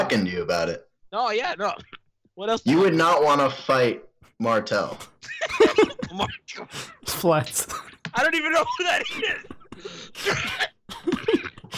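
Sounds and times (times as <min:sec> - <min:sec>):
speech: 0:00.0 - 0:11.7
laughter: 0:05.2 - 0:06.5, 0:08.4 - 0:09.7
wet hacking coughs clearing phlegm: 0:05.6 - 0:07.0, 0:09.2 - 0:11.7.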